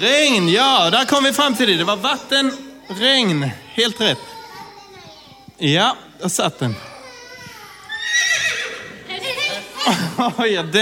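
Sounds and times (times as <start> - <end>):
speech: 0.0 - 4.3, 5.6 - 6.9, 9.8 - 10.8
laughter: 7.8 - 10.8
horse neighing: 8.0 - 9.0.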